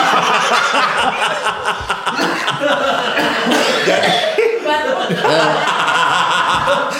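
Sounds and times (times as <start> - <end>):
chuckling and snickering laughter: 0.0 - 6.9
person coughing: 3.2 - 4.5.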